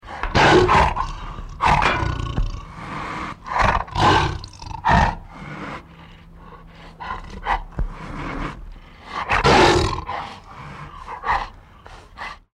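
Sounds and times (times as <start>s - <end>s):
tiger Panthera tigris: 0.0s - 12.5s.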